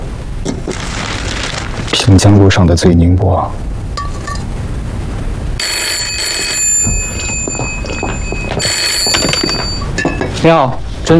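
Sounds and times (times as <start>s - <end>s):
steady hum: 0.0s - 11.1s
speech: 2.1s - 3.7s, 10.4s - 11.1s
old-fashioned telephone ringing: 5.6s - 10.0s.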